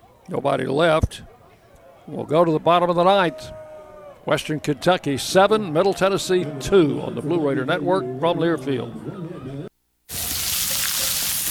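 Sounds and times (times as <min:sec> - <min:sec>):
speech: 0:00.3 - 0:01.3, 0:02.1 - 0:03.6, 0:04.2 - 0:09.4
hot dogs sizzling on a grill: 0:10.1 - 0:11.4.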